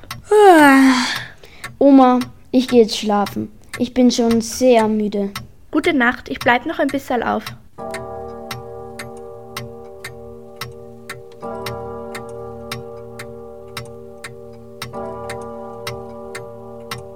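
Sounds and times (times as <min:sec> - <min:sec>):
clock ticking: 0:00.0 - 0:17.1
speech: 0:02.0 - 0:07.6
sustained tonal hum: 0:07.8 - 0:17.1.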